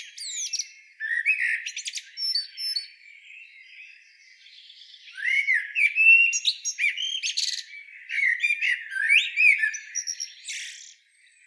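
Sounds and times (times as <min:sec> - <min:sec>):
common blackbird singing, Turdus merula: 0:00.0 - 0:11.4.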